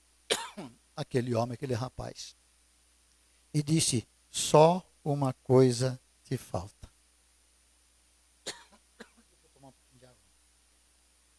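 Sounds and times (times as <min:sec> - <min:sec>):
old man coughing sharp raspy coughs: 0:00.3 - 0:00.8, 0:08.5 - 0:09.3
speech: 0:00.6 - 0:02.4, 0:03.5 - 0:06.8.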